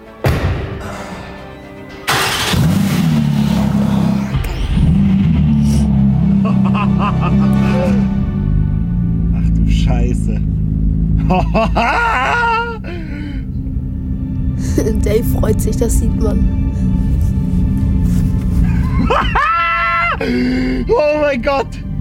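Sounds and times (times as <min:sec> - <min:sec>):
thump: 0:00.2 - 0:00.8
rebuilt Porsche GT3 sports car engine rumbling on a test drive: 0:02.1 - 0:21.9
laughter: 0:06.4 - 0:08.0, 0:11.2 - 0:13.0, 0:18.6 - 0:20.5
speech: 0:11.3 - 0:12.4, 0:14.8 - 0:17.0, 0:19.1 - 0:19.5, 0:20.2 - 0:21.8.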